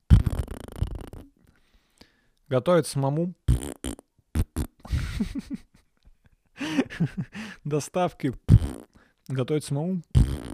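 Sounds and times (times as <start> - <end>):
voice imitating farting with buzzy mouth blasts: 0.0 - 1.4, 3.5 - 4.8, 8.4 - 9.0, 10.1 - 10.5
speech: 2.5 - 3.6, 5.2 - 5.7, 7.0 - 8.4, 9.3 - 10.1.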